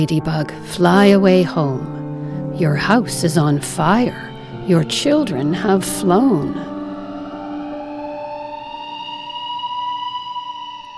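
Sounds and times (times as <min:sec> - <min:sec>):
speech: 0:00.0 - 0:02.0, 0:02.6 - 0:06.7
emergency vehicle siren wailing: 0:04.2 - 0:10.9.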